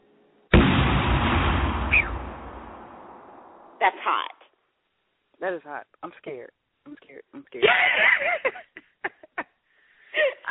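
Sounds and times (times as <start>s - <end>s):
TNT explosion: 0.5s - 3.8s
speech: 5.4s - 8.9s
laughter: 7.6s - 9.6s.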